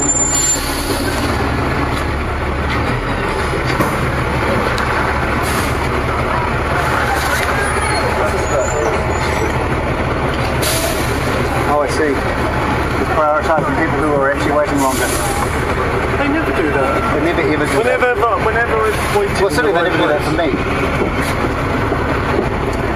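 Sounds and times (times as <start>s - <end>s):
large bus engine idling at a stop: 0.0s - 22.9s
indistinct voices murmuring: 4.4s - 21.0s.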